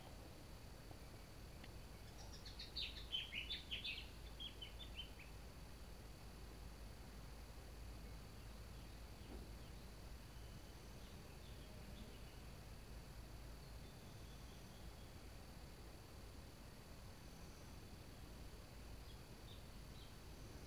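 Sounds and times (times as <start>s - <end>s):
faint bird song: 0.0s - 20.6s
soft steady outdoor hiss: 0.0s - 20.6s.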